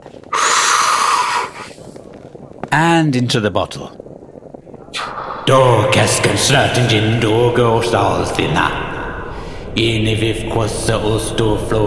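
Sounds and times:
deep breath in: 0:00.3 - 0:01.8, 0:09.3 - 0:09.8
speech: 0:02.7 - 0:04.0, 0:05.5 - 0:08.8, 0:09.8 - 0:11.8.

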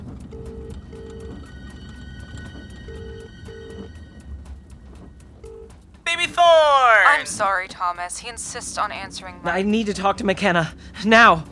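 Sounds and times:
noise: 0:00.0 - 0:11.4
phone ringing on an outgoing call: 0:00.3 - 0:04.0, 0:05.4 - 0:05.8
speech: 0:07.2 - 0:11.4.

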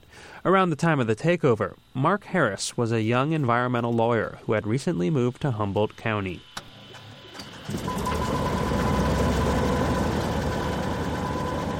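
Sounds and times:
speech: 0:00.4 - 0:06.5, 0:07.7 - 0:08.3
Cessna propeller plane engine starting and idling for a tour flight: 0:07.4 - 0:11.7.

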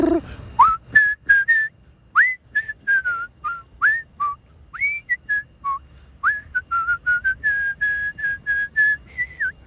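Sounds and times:
person whistling in imitation of a quarry end-of-shift whistle: 0:00.6 - 0:09.6.

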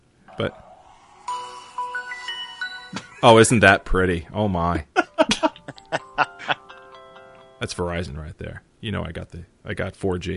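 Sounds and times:
smartphone power-on startup chime: 0:00.3 - 0:03.7
speech: 0:00.4 - 0:00.7, 0:03.2 - 0:05.3, 0:07.6 - 0:10.3.

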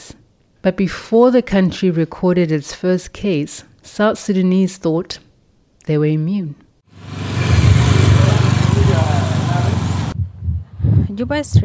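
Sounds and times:
speech: 0:00.6 - 0:05.2, 0:05.8 - 0:07.2, 0:11.2 - 0:11.6
faint street noise in Juba, South Sudan: 0:07.0 - 0:10.2
motorbike engine rumbling on an almost empty street in Juba, South Sudan: 0:07.0 - 0:10.2.

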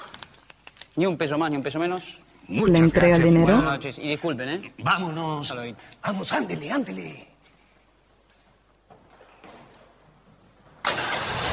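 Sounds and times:
speech: 0:01.0 - 0:07.3
car engine cranking and starting: 0:10.8 - 0:11.5.

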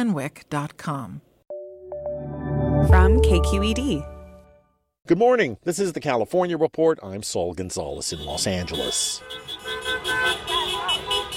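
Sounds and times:
speech: 0:00.0 - 0:01.3, 0:02.8 - 0:04.1, 0:05.0 - 0:10.4
car horns honking during a street celebration in downtown Los Angeles: 0:08.0 - 0:11.3.

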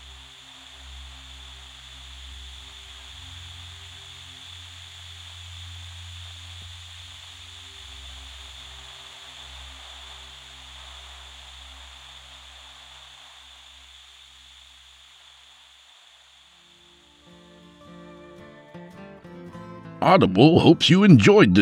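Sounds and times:
low hum: 0:00.0 - 0:18.4
television static white noise: 0:00.0 - 0:18.7
speech: 0:20.0 - 0:21.5.

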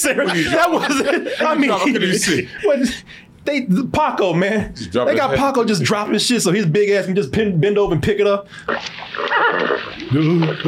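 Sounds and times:
laughter: 0:00.0 - 0:03.0
noise: 0:00.0 - 0:10.6
speech: 0:00.0 - 0:10.6
mule neighing in played-back video: 0:09.2 - 0:10.6.

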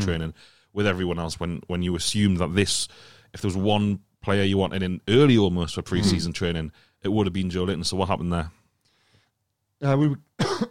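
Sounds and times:
speech: 0:00.0 - 0:08.6, 0:09.8 - 0:10.7
throaty voiced cough: 0:06.0 - 0:06.3, 0:10.4 - 0:10.7.

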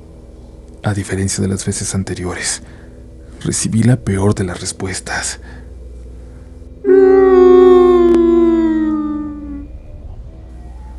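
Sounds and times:
speech: 0:00.8 - 0:05.6
harrowing wailing scream with crying echoing through a hotel: 0:06.8 - 0:10.9.

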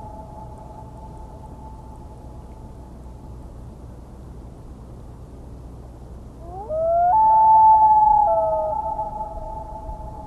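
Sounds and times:
Common Loon giving a long wailing call: 0:06.4 - 0:10.2.

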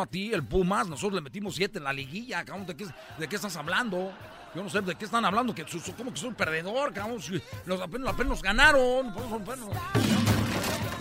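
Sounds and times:
speech: 0:00.0 - 0:10.8
laughter: 0:02.6 - 0:09.7
guitar toppling over with a sudden loud crash: 0:09.9 - 0:10.9.

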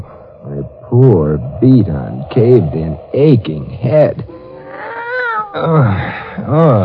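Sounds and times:
speech: 0:01.0 - 0:04.3, 0:05.5 - 0:06.8
cat meowing after being stepped on: 0:04.3 - 0:06.1.

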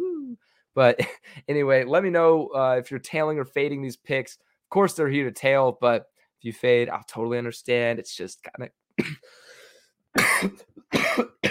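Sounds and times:
speech: 0:00.8 - 0:09.4, 0:10.1 - 0:11.0
sharp cough: 0:09.0 - 0:09.4, 0:10.2 - 0:11.4.

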